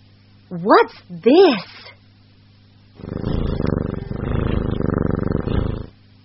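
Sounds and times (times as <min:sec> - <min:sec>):
speech: 0:00.5 - 0:01.9
cat purring: 0:03.0 - 0:06.0.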